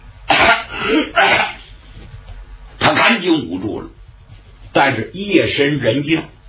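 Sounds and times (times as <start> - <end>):
performer's voice imitating a man coughing: 0.3 - 1.7
speech: 3.2 - 4.0, 4.8 - 6.4.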